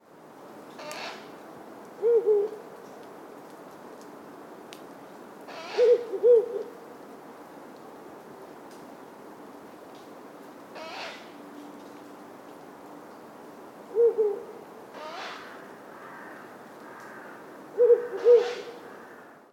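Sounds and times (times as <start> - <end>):
Ural owl calling: 5.5 - 6.6, 13.9 - 16.4, 17.0 - 19.2.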